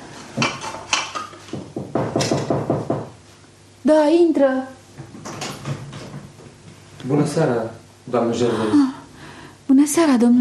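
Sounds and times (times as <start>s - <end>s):
dishes clattering and clinking while being washed: 0.0s - 3.1s, 5.0s - 6.3s
speech: 2.1s - 2.5s, 3.9s - 4.8s, 7.1s - 9.0s, 9.8s - 10.3s.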